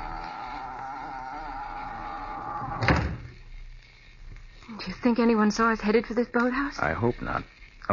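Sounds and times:
door swinging shut: 2.4s - 3.4s
speech: 5.0s - 7.9s.

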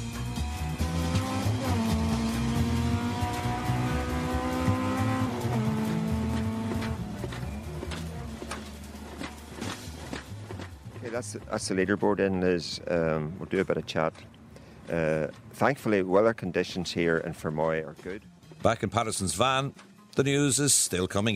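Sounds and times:
rally car engine revving hard through the gears on a stage: 0.0s - 11.1s
gravel crunching and rattling beneath a rally car: 5.8s - 20.0s
speech: 11.2s - 21.3s.

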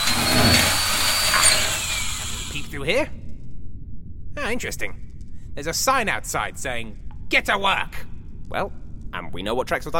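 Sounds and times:
power drill boring a hole in a locked door: 0.0s - 2.7s
speech: 2.9s - 3.2s, 4.5s - 9.9s.

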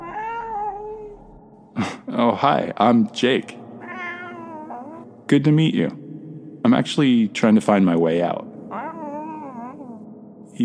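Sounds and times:
cat meowing: 0.0s - 1.2s, 3.8s - 5.0s, 8.7s - 10.0s
speech: 1.8s - 3.6s, 5.3s - 6.0s, 6.6s - 8.5s.

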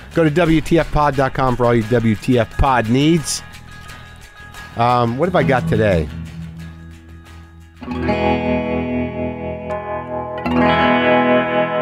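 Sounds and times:
speech: 0.2s - 3.5s, 4.8s - 6.3s
electric guitar chords through a tremolo pedal and echo pedal: 3.5s - 11.8s.

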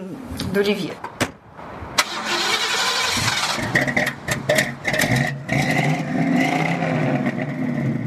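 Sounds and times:
speech: 0.4s - 1.1s
Ford Mustang engine starting and revving: 2.0s - 8.0s.

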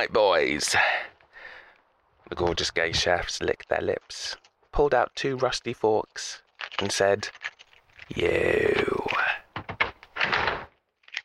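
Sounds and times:
speech: 0.0s - 1.1s, 2.3s - 7.5s, 8.1s - 9.0s
door closing: 8.7s - 10.8s.

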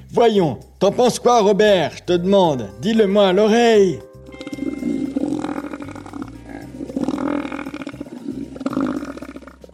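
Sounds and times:
speech: 0.1s - 4.6s
elephant seal guttural grunting roars: 4.8s - 9.7s.

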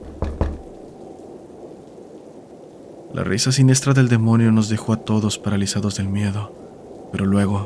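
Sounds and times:
desperate heavy knocking on a door: 0.0s - 0.8s
speech: 3.1s - 7.6s.

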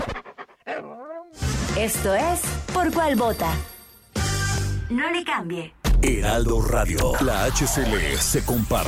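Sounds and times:
dog panting: 0.1s - 1.0s
speech: 1.8s - 3.7s, 4.9s - 8.8s.

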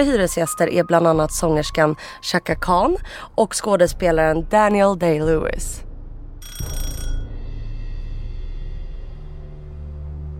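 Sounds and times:
speech: 0.0s - 5.9s
doorbell ringing: 6.4s - 7.4s.

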